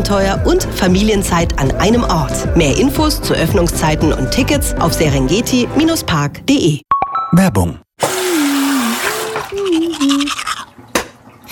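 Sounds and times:
speech: 0:00.1 - 0:08.1
water running from a tap: 0:08.0 - 0:11.5
tooth brushing with toothpaste: 0:08.2 - 0:10.7.

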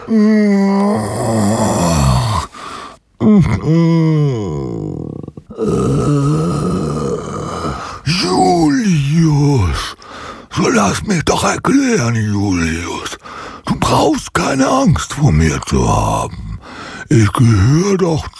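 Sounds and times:
long pitiful groaning moan in a low wavering voice: 0:00.0 - 0:02.6, 0:03.2 - 0:09.3
speech: 0:00.1 - 0:01.6, 0:03.4 - 0:05.0, 0:10.8 - 0:13.2, 0:13.9 - 0:16.4, 0:17.1 - 0:18.3.

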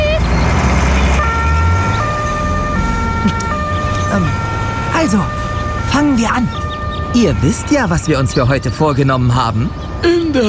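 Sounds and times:
emergency vehicle siren wailing in a hi-lo pattern: 0:00.0 - 0:10.4
low rumble of road traffic: 0:00.0 - 0:10.4
speech: 0:05.1 - 0:05.4, 0:06.2 - 0:10.4.

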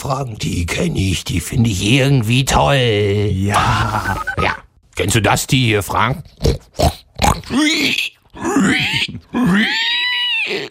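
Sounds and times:
speech: 0:00.0 - 0:10.6
pig grunting and oinking: 0:06.2 - 0:10.6.

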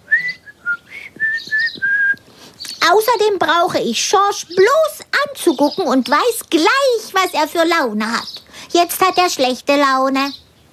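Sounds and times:
person whistling a short tune: 0:00.1 - 0:02.2
speech: 0:02.8 - 0:10.7.

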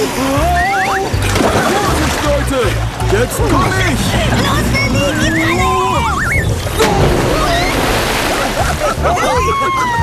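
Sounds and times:
laughter: 0:00.0 - 0:10.0
water splashing and sloshing as friends jump into a waterhole: 0:00.0 - 0:10.0
speech: 0:03.2 - 0:05.7, 0:09.0 - 0:10.0
high squeaky whistles: 0:03.8 - 0:08.0.

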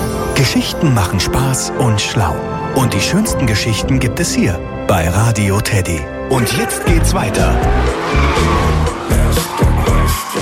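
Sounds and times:
speech: 0:00.4 - 0:08.8
sports car tire noise on a winding mountain road: 0:06.5 - 0:10.4
silver sports car engine revving at full throttle up a mountain road: 0:06.8 - 0:10.1.

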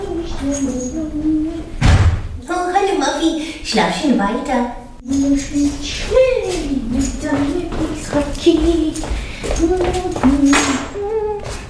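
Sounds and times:
speech: 0:00.4 - 0:01.7, 0:02.8 - 0:10.9
door thudding to a stop: 0:01.8 - 0:02.4.

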